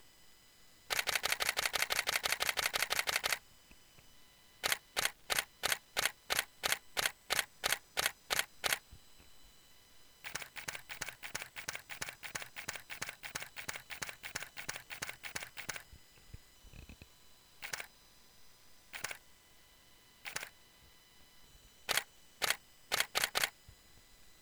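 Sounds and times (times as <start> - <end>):
5D Mark III camera shutter: 0.9 - 3.4, 4.6 - 8.8, 10.3 - 15.8, 17.6 - 17.9, 19.0 - 19.2, 20.3 - 20.5, 21.9 - 23.6.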